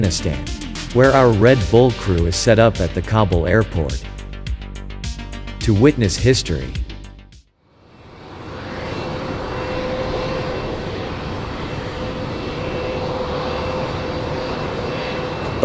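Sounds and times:
speech: 0.0 - 4.1, 5.6 - 6.8
huge Russian Antonov AN-225 airplane engines droning at Kabul airport: 0.0 - 4.3, 7.7 - 15.6.

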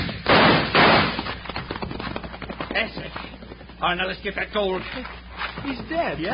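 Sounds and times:
gunshots in a western radio drama: 0.0 - 1.4
speech: 2.8 - 3.2, 3.8 - 6.3.

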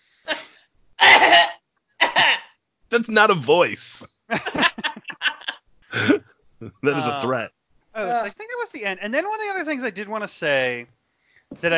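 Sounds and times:
person coughing harshly: 1.0 - 2.5, 5.9 - 7.2
speech: 2.9 - 4.7, 6.0 - 11.7
laughter: 4.3 - 7.4.

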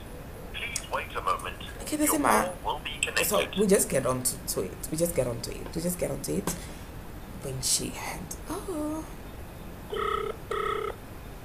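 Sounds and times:
speech: 1.9 - 6.7, 7.4 - 9.2
phone line ringback tone with electronic buzzing rings: 9.9 - 11.0.

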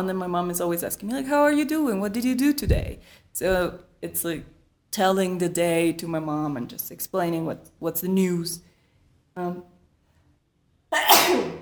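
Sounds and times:
speech: 0.0 - 8.7, 9.4 - 9.7
sneeze: 11.0 - 11.6.

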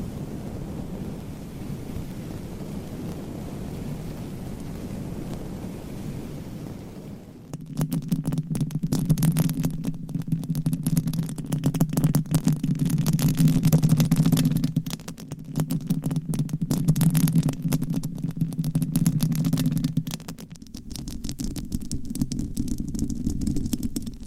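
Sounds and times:
long nails scratching across microphones: 7.5 - 24.2.

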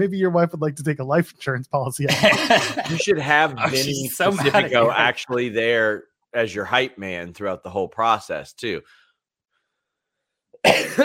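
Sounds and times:
speech: 0.0 - 9.0
laughter: 1.8 - 8.2
person coughing: 2.1 - 5.9, 10.6 - 11.0.

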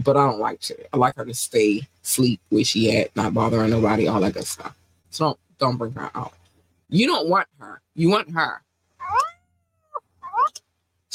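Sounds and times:
speech: 0.0 - 9.2
female domestic cat meowing: 9.0 - 10.6.

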